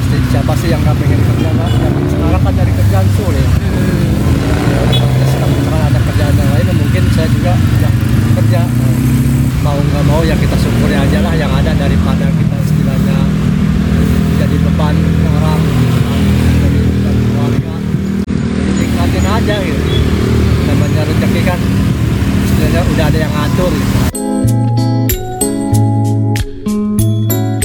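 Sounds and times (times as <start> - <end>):
dense road traffic in Lebak rumbling: 0.0 - 24.2
motorbike engines droning and revving: 0.0 - 24.2
speech: 0.6 - 13.5, 14.5 - 15.9, 19.3 - 21.8, 22.6 - 24.8
music: 24.1 - 27.6.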